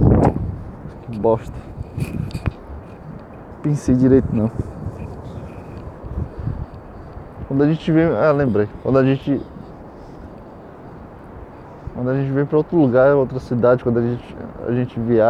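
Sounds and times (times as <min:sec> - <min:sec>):
wind buffeting the microphone: 0:00.0 - 0:15.2
speech: 0:01.1 - 0:02.6, 0:03.6 - 0:04.8, 0:07.6 - 0:09.5, 0:12.0 - 0:15.2.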